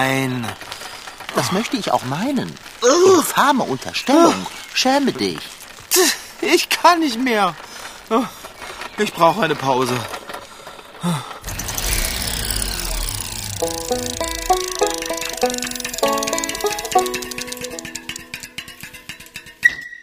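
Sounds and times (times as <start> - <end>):
speech: 0.0 - 0.7, 1.4 - 8.4, 9.0 - 10.2, 11.0 - 11.3, 13.6 - 14.8, 15.4 - 15.8
car engine starting and rumbling: 11.4 - 17.8.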